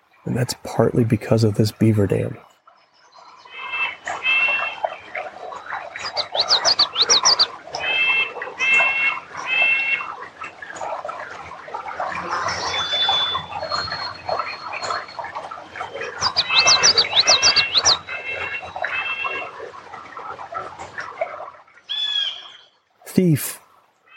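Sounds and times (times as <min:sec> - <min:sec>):
birdsong chorus near a beaver dam: 0:00.1 - 0:11.2, 0:12.0 - 0:19.5
speech: 0:00.2 - 0:02.5.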